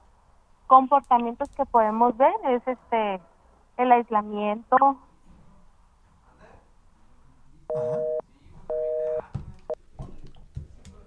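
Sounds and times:
speech: 0.7 - 5.0, 7.7 - 8.1
phone line busy tone after a dropped call: 7.7 - 9.2.

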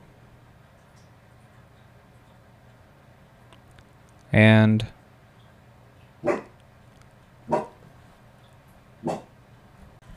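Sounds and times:
speech: 4.3 - 5.0
dog barking indoors: 6.2 - 6.5, 7.5 - 7.8, 9.0 - 9.3.

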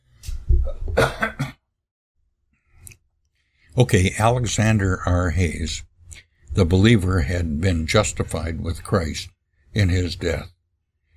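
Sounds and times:
rough rasping throat clearing: 0.6 - 1.6
speech: 3.8 - 5.9, 6.6 - 10.6.

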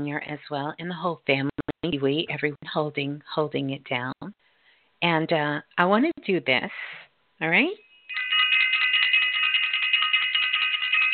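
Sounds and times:
speech: 0.0 - 4.4, 5.0 - 8.4
bell ringing: 7.8 - 11.1.

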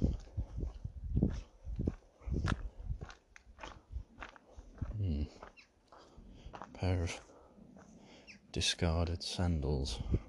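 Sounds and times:
footsteps crunching on gravel while walking: 0.1 - 8.1
speech: 6.8 - 7.3, 8.6 - 10.2.

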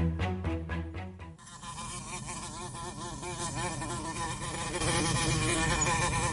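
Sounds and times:
brief rhythmic pulses: 0.0 - 1.4
many wasps buzzing outdoors: 1.4 - 6.3.

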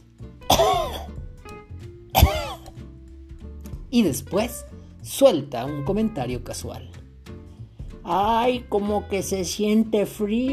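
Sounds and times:
person coughing: 0.5 - 1.2, 2.1 - 2.7
speech: 3.9 - 7.0, 8.1 - 10.5.

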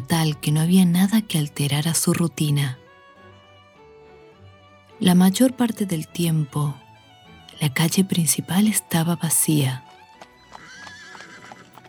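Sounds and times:
speech: 0.0 - 2.8, 5.0 - 6.8, 7.6 - 9.9
horse hooves clip-clopping on dirt at walking pace: 9.8 - 11.8.

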